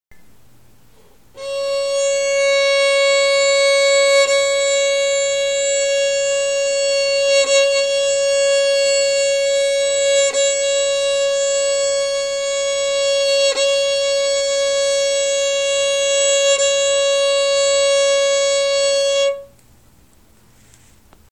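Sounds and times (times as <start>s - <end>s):
violin playing C sharp: 1.3s - 19.6s.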